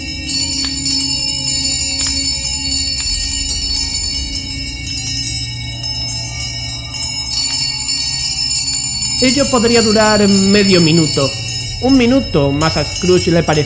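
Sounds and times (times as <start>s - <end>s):
many house bells ringing loudly together: 0.0s - 13.6s
speech: 9.2s - 13.6s.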